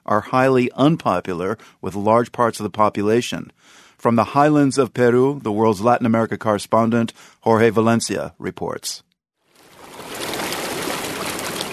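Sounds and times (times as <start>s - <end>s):
speech: 0.1s - 9.1s
mountain river flowing past a small farming town in the Peruvian highlands: 9.6s - 11.7s.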